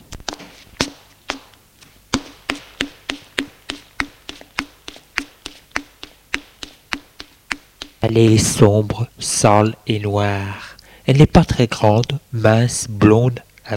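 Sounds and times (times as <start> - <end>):
footsteps going down stairs: 0.0 - 8.2
speech: 8.1 - 13.7.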